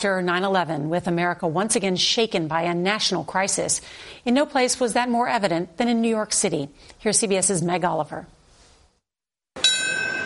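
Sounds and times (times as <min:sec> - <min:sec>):
speech: 0:00.0 - 0:08.4
memorial bell ringing: 0:09.6 - 0:10.2.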